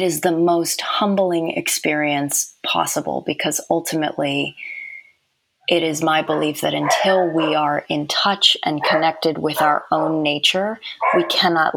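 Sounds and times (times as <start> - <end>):
speech: 0.0 - 4.8, 5.7 - 11.7
dogs barking: 6.2 - 7.7, 8.7 - 10.3, 11.0 - 11.5.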